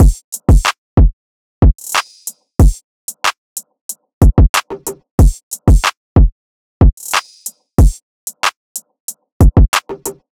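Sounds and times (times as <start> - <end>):
drum loop: 0.0 - 3.3, 4.2 - 8.5, 9.4 - 10.2.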